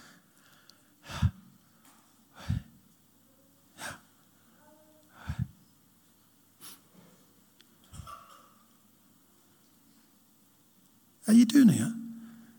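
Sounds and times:
group of people breathing slowly with eyes shut: 0:00.0 - 0:02.8, 0:03.8 - 0:05.6, 0:12.2 - 0:12.5
speech: 0:11.3 - 0:12.0.

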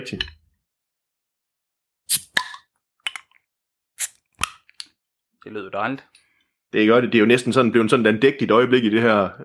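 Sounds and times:
speech: 0:00.0 - 0:00.4, 0:05.4 - 0:09.4
Czech beer bottle cap being worked loose: 0:02.1 - 0:03.4, 0:04.0 - 0:05.0.

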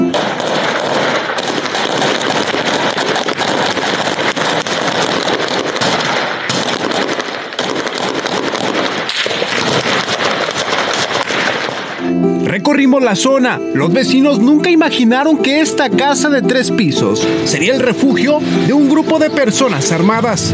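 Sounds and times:
rapid bursts of gunfire during an armed shootout: 0:00.0 - 0:12.0
speech: 0:12.8 - 0:20.5.

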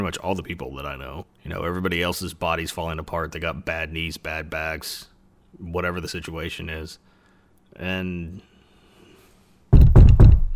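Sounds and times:
speech: 0:00.0 - 0:07.1, 0:07.7 - 0:08.5
firm knocking on wood: 0:09.7 - 0:10.5.

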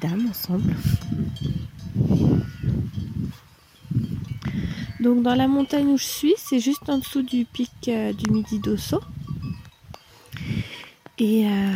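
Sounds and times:
speech: 0:00.0 - 0:02.5, 0:05.0 - 0:09.1, 0:11.2 - 0:11.7
outdoor ambience: 0:00.0 - 0:11.7
dairy ewes bleating: 0:02.2 - 0:02.8.

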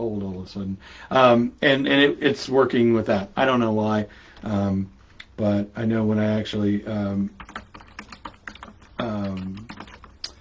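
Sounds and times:
speech: 0:00.0 - 0:07.5
typing on a computer keyboard: 0:07.3 - 0:10.3.

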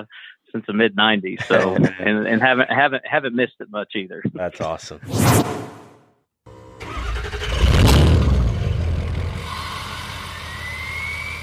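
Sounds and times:
speech: 0:00.0 - 0:05.8
laughter: 0:01.4 - 0:02.9
large diesel truck engine starting, revving and idling: 0:06.8 - 0:11.4.

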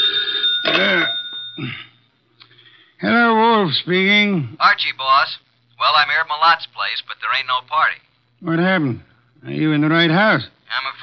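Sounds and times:
old-fashioned telephone bell ringing: 0:00.0 - 0:01.7
faint steady hum: 0:00.0 - 0:11.0
speech: 0:01.6 - 0:01.9, 0:03.0 - 0:11.0.

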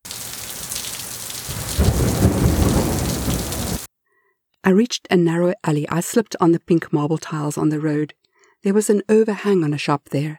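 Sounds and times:
heavy rain pouring: 0:00.0 - 0:03.9
deep rumble of thunder: 0:00.2 - 0:03.9
speech: 0:04.7 - 0:10.3.

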